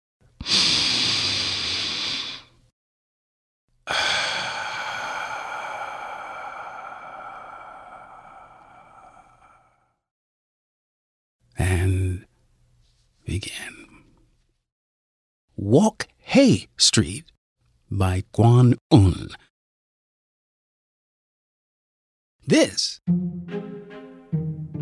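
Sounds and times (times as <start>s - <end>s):
deep breath with loud inhale and long exhale: 0.4s - 2.6s, 3.8s - 10.1s
speech: 15.6s - 19.5s, 22.5s - 24.4s.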